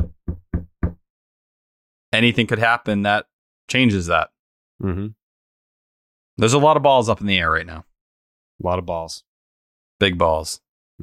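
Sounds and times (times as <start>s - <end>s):
knuckle raps on a wooden surface: 0.0s - 1.0s
speech: 2.2s - 5.2s, 6.4s - 7.9s, 8.6s - 9.3s, 10.0s - 11.0s.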